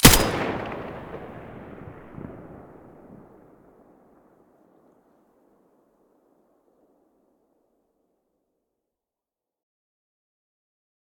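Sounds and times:
M4A1 rifle muzzle gunshot: 0.0 - 2.2.

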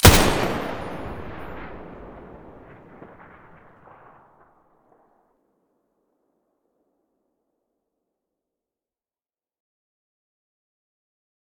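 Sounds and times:
M249 machine gun muzzle firing: 0.0 - 4.0.

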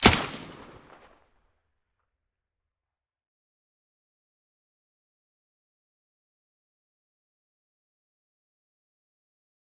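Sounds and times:
AUG rifle fired with a silencer: 0.0 - 1.1.

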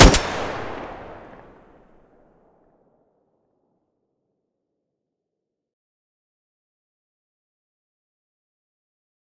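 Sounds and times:
Groza gun muzzle blast: 0.0 - 1.5.

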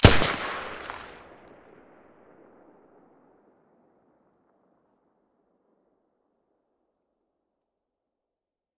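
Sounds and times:
silenced MP9 gun shots: 0.0 - 1.2.

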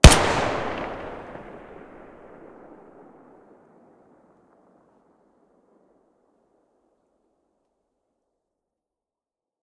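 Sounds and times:
TT-33 pistol gunshot: 0.0 - 2.8.

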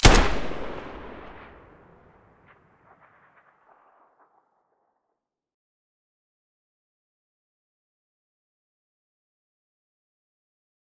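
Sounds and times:
Galil rifle muzzle blast: 0.0 - 2.0.

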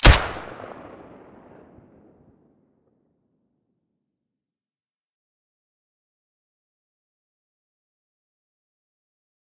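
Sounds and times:
Colt 1911 pistol with silencer: 0.0 - 1.7.

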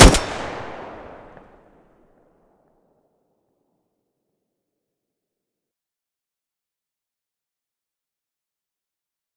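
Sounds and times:
Groza rifle gunshot from the muzzle: 0.0 - 1.4.

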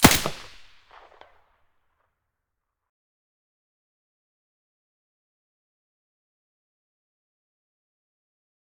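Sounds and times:
suppressed sa58 rifle shot: 0.0 - 1.2.

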